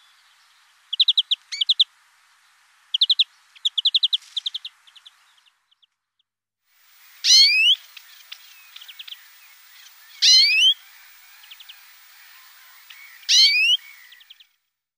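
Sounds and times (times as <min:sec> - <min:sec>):
European greenfinch song of quick chirps and twitters: 0:00.9 - 0:01.8, 0:02.9 - 0:05.9, 0:07.1 - 0:14.6
loud rising bird call: 0:07.1 - 0:14.4.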